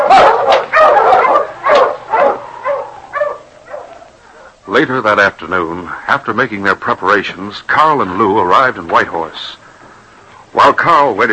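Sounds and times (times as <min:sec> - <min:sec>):
sled dogs barking and yipping: 0:00.0 - 0:04.6
speech: 0:04.8 - 0:09.6, 0:10.5 - 0:11.3.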